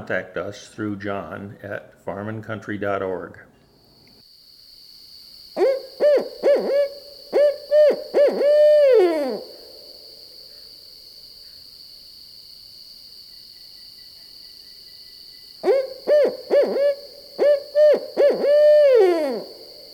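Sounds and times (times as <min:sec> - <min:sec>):
speech: 0:00.0 - 0:03.5
high insect trill: 0:03.8 - 0:19.9
owl hooting: 0:05.6 - 0:10.7, 0:15.6 - 0:19.9.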